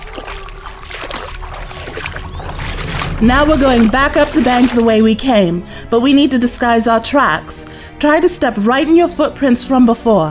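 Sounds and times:
river water splashing and churning: 0.0s - 5.9s
low rumbling background: 0.0s - 9.1s
speech: 3.2s - 10.3s.

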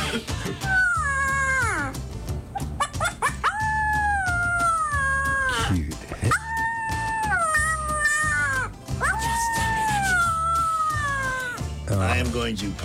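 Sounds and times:
speech: 0.1s - 0.8s, 12.5s - 12.8s
Weimaraner puppy howling: 0.6s - 1.9s, 2.8s - 11.6s.

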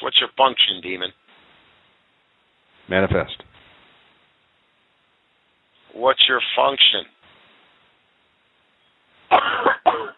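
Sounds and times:
speech: 0.1s - 1.2s, 2.9s - 3.5s, 6.0s - 7.2s
person coughing harshly: 9.3s - 10.1s.

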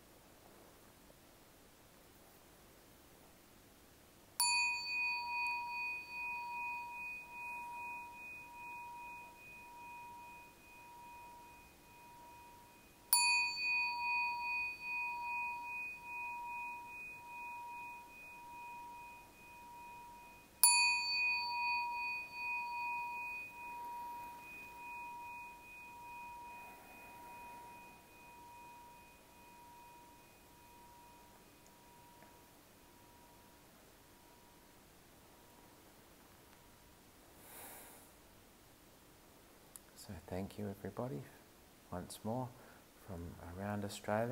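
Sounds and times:
meditation gong ringing with sustained metallic hum: 4.4s - 32.2s
speech: 40.0s - 44.3s.

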